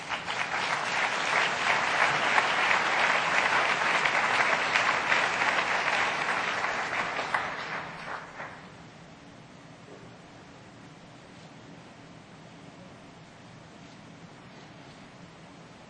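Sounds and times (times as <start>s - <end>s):
audience applause: 0.0s - 8.7s.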